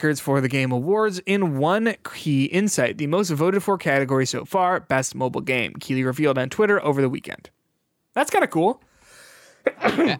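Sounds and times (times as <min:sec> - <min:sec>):
speech: 0:00.0 - 0:07.6, 0:08.2 - 0:08.9, 0:09.6 - 0:10.1
single sharp sneeze: 0:09.7 - 0:10.1.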